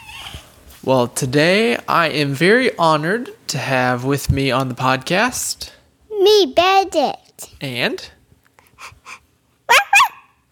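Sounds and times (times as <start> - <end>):
speech: 0.8 - 8.2
young girl panting imitating a puppy: 8.6 - 9.3
young girl yipping imitating a puppy: 9.7 - 10.3.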